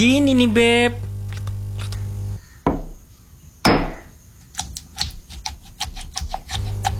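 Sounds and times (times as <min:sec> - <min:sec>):
speech: 0:00.0 - 0:01.0
low hum: 0:00.0 - 0:04.4
stone pestle grinding chili sambal in a stone mortar: 0:02.7 - 0:03.0, 0:03.7 - 0:06.9.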